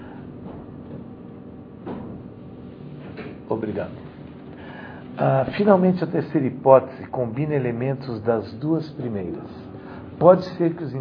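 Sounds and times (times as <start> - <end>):
steady hum of room noise: 0.0 - 10.9
door pushed shut with a muffled thud: 1.8 - 2.2
speech: 3.5 - 4.1, 5.2 - 10.9.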